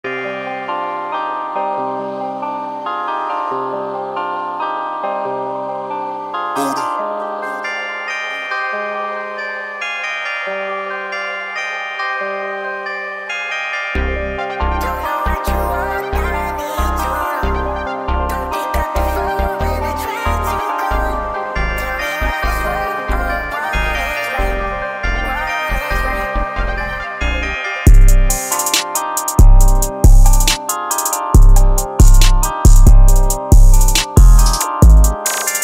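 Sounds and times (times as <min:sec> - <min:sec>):
hard dark trap rap instrumental beat: 0:14.0 - 0:23.2, 0:23.8 - 0:35.6.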